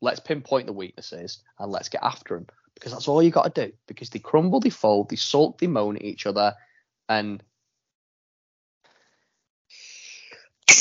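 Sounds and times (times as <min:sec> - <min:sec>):
speech: 0:00.0 - 0:07.5
person sneezing: 0:09.8 - 0:10.8.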